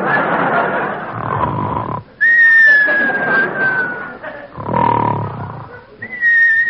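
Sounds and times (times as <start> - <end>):
laughter: 0.0 - 1.6, 2.2 - 6.3
loud snoring of a sleeper: 1.1 - 2.1, 4.5 - 5.8
long high steady whistles of a sleeper on the exhale: 2.2 - 4.1, 6.0 - 6.6.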